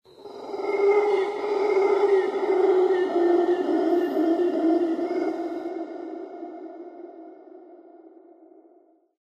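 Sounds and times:
yeti animal call in a lair: 0:00.1 - 0:06.8.

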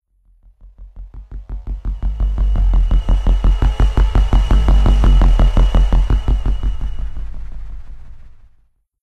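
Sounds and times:
pod passing by: 0:01.7 - 0:08.4.

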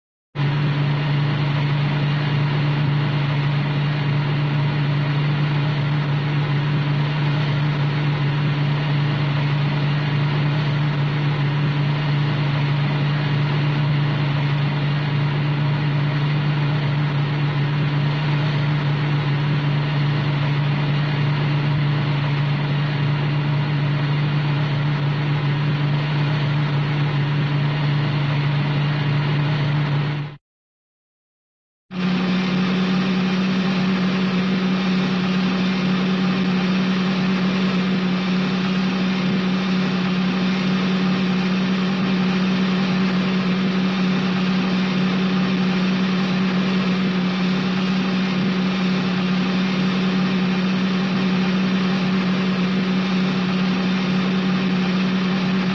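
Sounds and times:
cartoon mystery van: 0:00.4 - 0:30.4, 0:31.9 - 0:55.7.

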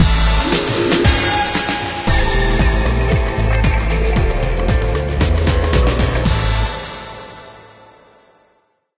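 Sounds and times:
disco music for video games: 0:00.0 - 0:06.7.

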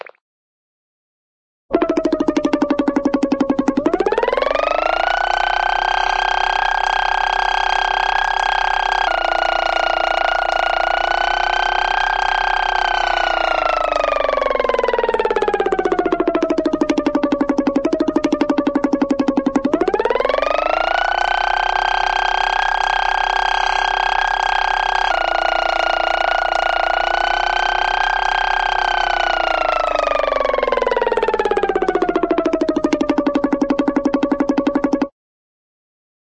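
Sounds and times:
cartoon lip motor: 0:01.7 - 0:35.1.

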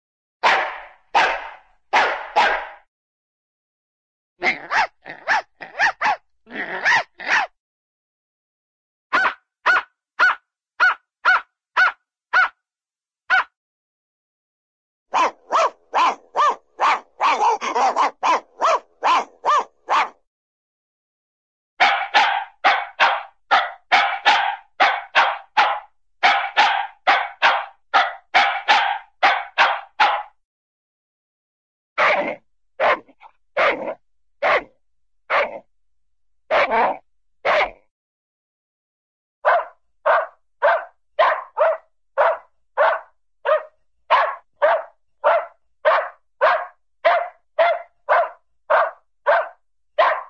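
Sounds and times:
small cartoon dog barking: 0:00.4 - 0:02.9, 0:04.4 - 0:07.6, 0:09.1 - 0:12.6, 0:13.3 - 0:13.6, 0:15.1 - 0:20.2, 0:21.8 - 0:30.4, 0:32.0 - 0:35.7, 0:36.5 - 0:37.8, 0:39.4 - 0:50.2.

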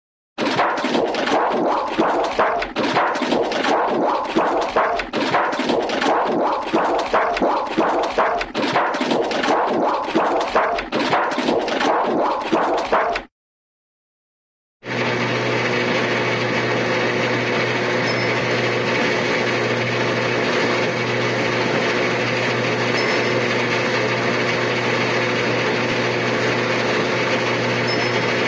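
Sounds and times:
cartoon washing machine: 0:00.4 - 0:13.3, 0:14.8 - 0:28.4.

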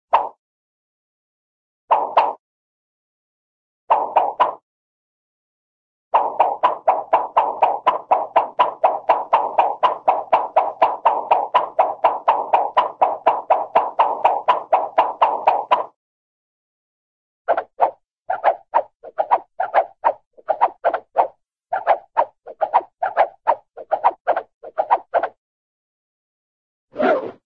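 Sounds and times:
cartoon single sword swish: 0:00.1 - 0:00.4, 0:01.9 - 0:02.4, 0:03.9 - 0:04.6, 0:06.2 - 0:15.9, 0:17.5 - 0:25.4, 0:27.0 - 0:27.4.

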